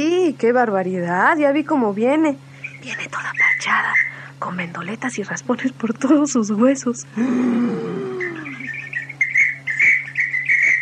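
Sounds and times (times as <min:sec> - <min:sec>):
speech: 0:00.0 - 0:08.3
steady low hum: 0:00.0 - 0:10.7
parakeet chirping: 0:02.6 - 0:04.3, 0:08.2 - 0:10.7.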